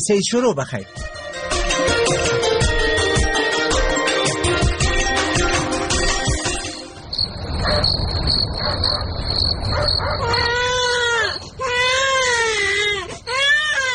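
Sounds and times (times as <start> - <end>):
speech: 0.0 - 1.2
music: 0.6 - 7.1
steady cricket-like chirp: 7.1 - 10.6
sick baby crying loudly: 10.0 - 13.9.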